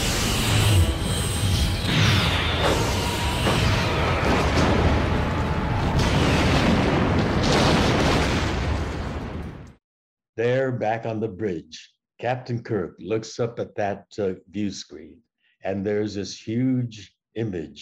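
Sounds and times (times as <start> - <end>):
sweeping zaps of starship weapons: 0.0 - 4.5
sci-fi starship weapons fire: 2.0 - 9.7
rumbling explosions of starships: 2.4 - 9.8
speech: 10.4 - 17.7.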